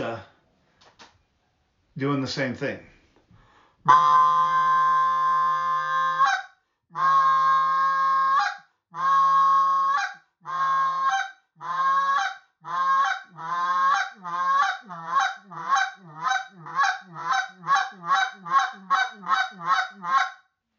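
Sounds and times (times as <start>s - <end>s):
speech: 2.0s - 2.9s, 3.8s - 4.4s
goose call honking and clucking: 3.9s - 20.4s.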